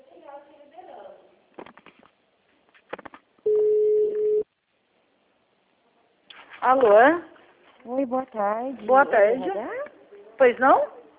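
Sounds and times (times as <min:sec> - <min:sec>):
telephone line tone while a call to a city hall switchboard is transferred: 0:03.5 - 0:04.4
speech: 0:06.6 - 0:09.8, 0:10.4 - 0:11.0.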